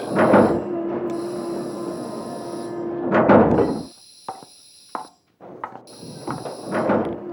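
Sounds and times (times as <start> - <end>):
steady high electronic tones: 0.0 - 2.9, 3.6 - 5.1, 5.9 - 6.9
sliding door opening with a whooshing burst: 0.0 - 3.8, 5.4 - 7.3
sharp mechanical clunks: 0.0 - 3.9, 5.0 - 7.3.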